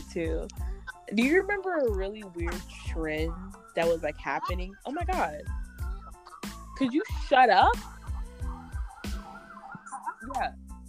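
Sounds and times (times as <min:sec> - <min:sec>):
speech: 0:00.2 - 0:05.6, 0:06.8 - 0:08.0, 0:10.4 - 0:10.6
emergency vehicle siren passing by: 0:03.2 - 0:10.4.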